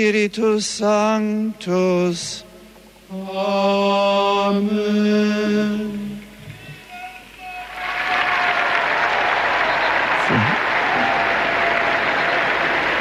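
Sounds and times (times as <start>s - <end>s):
speech: 0.0s - 2.5s, 3.1s - 6.2s
large crowd applauding outdoors in a large square: 7.0s - 12.9s.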